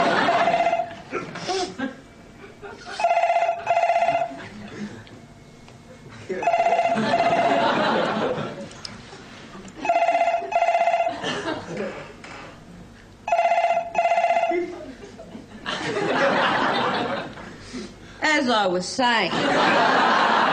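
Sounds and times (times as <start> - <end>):
telephone bell ringing at a workplace: 0.0 - 1.0, 3.0 - 4.5, 6.4 - 8.3, 9.8 - 11.3, 13.3 - 14.8
laughter: 0.0 - 5.3, 5.9 - 12.6, 14.4 - 18.0, 19.3 - 20.5
speech: 18.8 - 19.9.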